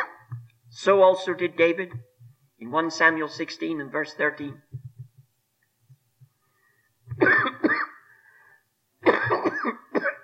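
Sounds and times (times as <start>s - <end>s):
speech: 0.8s - 4.7s
harsh person coughing: 7.1s - 8.1s, 9.0s - 10.2s
raspy breath: 8.0s - 8.7s.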